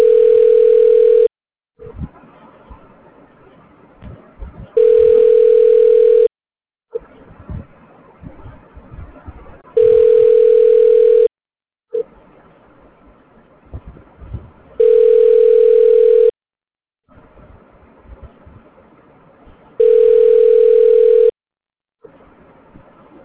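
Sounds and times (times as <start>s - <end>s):
telephone ringback tone while a call connects: 0.0s - 1.3s, 4.8s - 6.3s, 9.8s - 11.3s, 14.8s - 16.4s, 19.8s - 21.4s.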